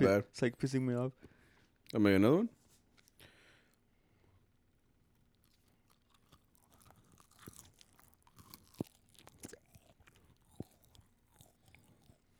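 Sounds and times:
speech: 0.0 - 1.3, 1.9 - 2.6
crunchy chewing of food: 2.8 - 12.3.

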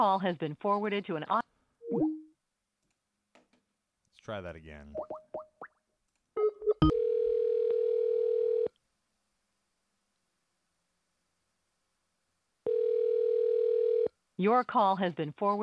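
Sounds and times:
speech: 0.0 - 1.4, 4.3 - 5.2, 14.4 - 15.6
steady electronic ring tone on an outgoing phone call: 6.6 - 8.7, 12.7 - 14.1.

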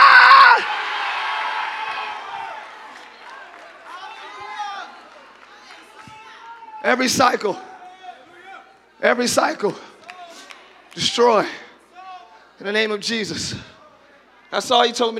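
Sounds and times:
large crowd screaming and shouting: 0.0 - 7.3
crowd cheering: 0.0 - 12.4
speech: 6.9 - 7.7, 9.0 - 9.9, 11.0 - 11.6, 12.6 - 13.7, 14.5 - 15.1.

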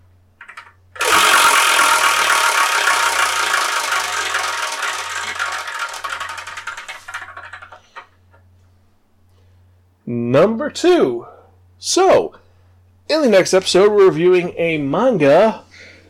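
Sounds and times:
numbered prize wheel spinning with clattering ticks: 0.4 - 8.0
speech: 10.4 - 12.4, 13.1 - 15.6.

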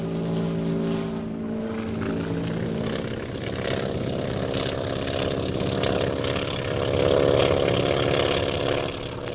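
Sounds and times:
propeller engines of bomber planes droning during takeoff: 0.0 - 9.3.

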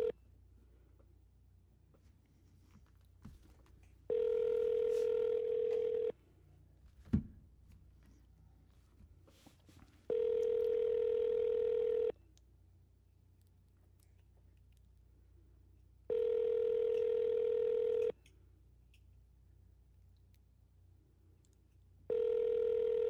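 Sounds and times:
phone line ringback tones during a prank call: 4.1 - 6.1, 10.1 - 12.1, 16.1 - 18.1, 22.1 - 23.0.

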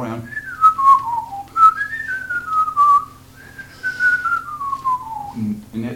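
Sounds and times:
person whistling a tune: 0.3 - 5.5.

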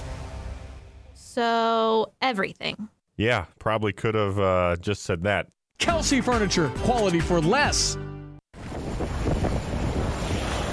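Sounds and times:
speech: 1.3 - 8.1
strong winter storm wind buffeting the microphone: 8.5 - 10.7.

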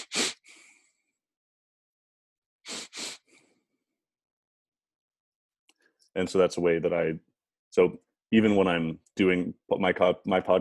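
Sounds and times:
long exhale in a breathing exercise: 0.0 - 1.0, 2.7 - 3.6
two sharp inhales in a breathing exercise: 0.0 - 1.1, 2.7 - 3.7
speech: 6.1 - 10.6.

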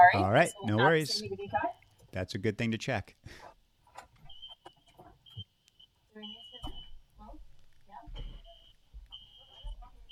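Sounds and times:
speech: 0.0 - 3.5
building fire alarm sounding in high-pitched electronic bursts: 4.3 - 7.0, 8.3 - 10.1.

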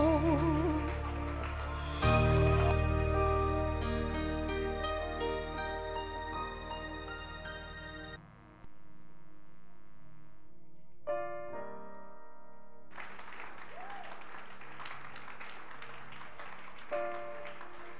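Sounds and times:
crowd applauding: 0.0 - 7.2, 12.9 - 17.9
sustained musical tones: 0.0 - 8.7.

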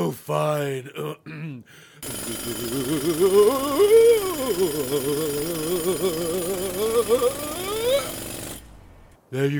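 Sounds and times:
speech: 0.1 - 8.3, 9.3 - 9.5
power drill boring a hole: 2.0 - 8.7.

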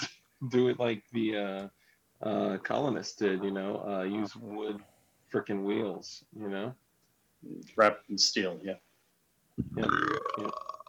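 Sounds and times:
speech: 0.4 - 6.8, 7.4 - 8.9, 9.6 - 10.7
loud drawn-out burp: 9.7 - 10.8.

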